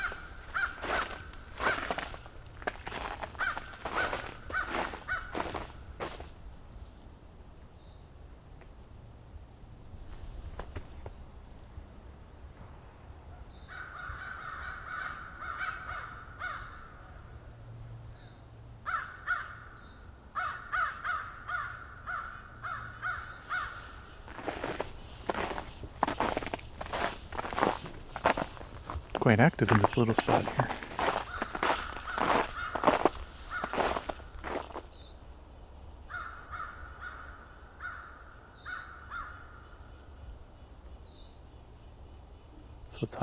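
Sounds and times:
American crow cawing: 0.0s - 2.2s, 2.9s - 6.2s, 13.7s - 17.1s, 18.8s - 19.8s, 20.4s - 28.6s, 30.4s - 34.8s, 36.1s - 39.8s
footsteps crunching: 0.0s - 6.4s, 23.4s - 34.9s
speech: 29.3s - 30.9s.

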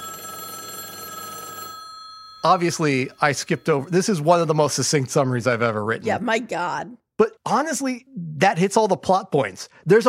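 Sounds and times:
telephone ringing with bright buzzing electronic tone: 0.0s - 4.7s
speech: 2.4s - 10.0s.

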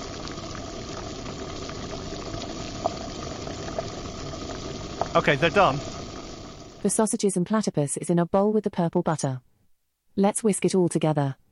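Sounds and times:
water boiling in a pot in a kids' kitchen cooking game: 0.0s - 7.0s
speech: 5.2s - 5.9s, 6.8s - 9.5s, 10.2s - 11.4s.

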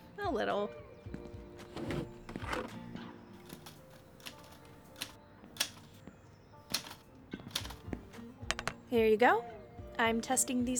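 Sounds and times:
speech: 0.3s - 0.9s, 8.9s - 10.7s
typewriter keys clacking: 3.4s - 5.9s, 6.7s - 7.8s.

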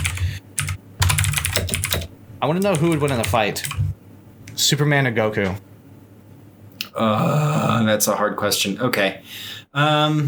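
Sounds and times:
computer keyboard typing: 0.0s - 3.9s
speech: 2.4s - 3.8s, 4.6s - 5.7s, 7.0s - 10.2s.

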